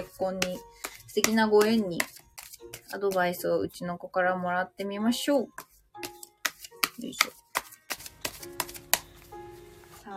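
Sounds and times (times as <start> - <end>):
speech: 0.2 - 6.1, 7.0 - 7.4
tarot cards being shuffled and drawn: 0.4 - 3.0, 6.0 - 9.4.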